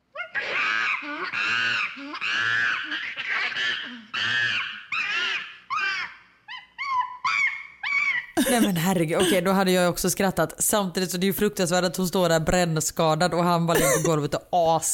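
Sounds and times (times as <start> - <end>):
angry chimpanzee screaming: 0.1 - 8.4
speech: 8.6 - 14.9.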